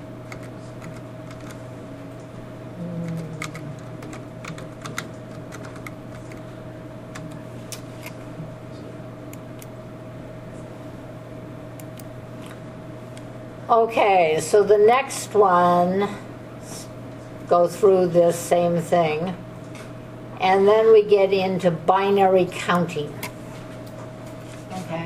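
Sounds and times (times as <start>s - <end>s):
typing on a computer keyboard: 0.3s - 1.6s, 3.1s - 6.4s
speech: 13.7s - 16.2s, 17.5s - 19.4s, 20.5s - 23.2s.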